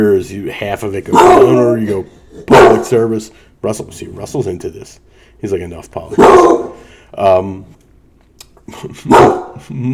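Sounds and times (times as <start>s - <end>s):
speech: 0.0s - 7.8s, 8.7s - 9.9s
dog barking at people on its territory: 1.1s - 1.7s, 2.5s - 3.0s, 6.1s - 6.8s, 9.1s - 9.6s.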